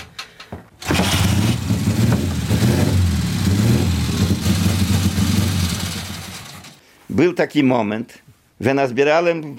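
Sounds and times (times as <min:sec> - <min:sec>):
1938 historic vehicle engine cranking, starting and idling: 0:00.8 - 0:06.8
speech: 0:07.2 - 0:09.5.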